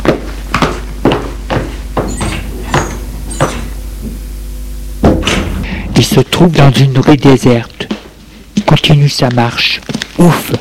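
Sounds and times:
hollow knocks and clunks: 0:00.6 - 0:03.7, 0:05.0 - 0:05.6
door opening with a thud: 0:02.0 - 0:03.8, 0:05.0 - 0:05.6
speech: 0:06.0 - 0:07.7, 0:08.7 - 0:10.5.

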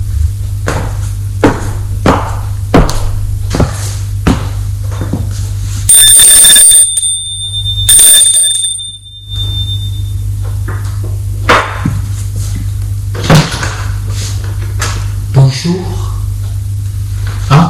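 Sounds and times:
steady low hum: 0:00.0 - 0:17.6
bright electric doorbell ringing: 0:05.9 - 0:10.2.

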